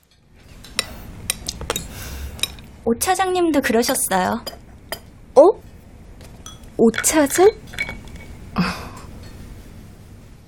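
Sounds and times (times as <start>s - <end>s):
dishes and cutlery clinking as plates are cleared: 0.0s - 2.7s, 3.9s - 8.4s, 9.0s - 9.5s
speech: 2.8s - 4.6s, 6.8s - 7.8s.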